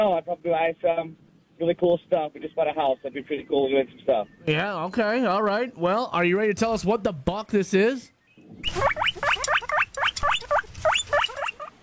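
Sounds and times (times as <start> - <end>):
speech: 0.0 - 10.5
guinea pig squeaking: 8.6 - 11.8.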